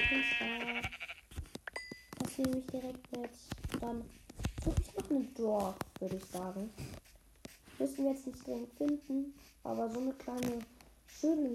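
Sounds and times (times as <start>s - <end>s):
sheep bleating: 0.0s - 1.2s
speech: 2.4s - 7.0s, 7.8s - 11.5s.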